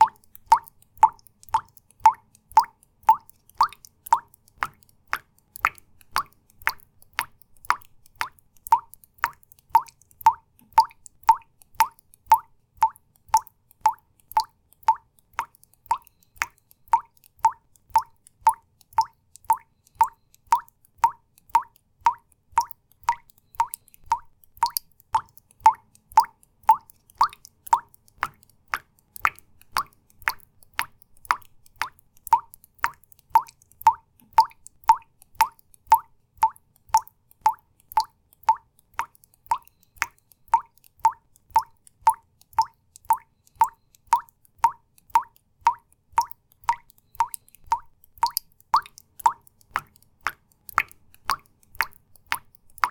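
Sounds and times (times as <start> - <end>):
fast falling water drips: 0.0 - 52.8.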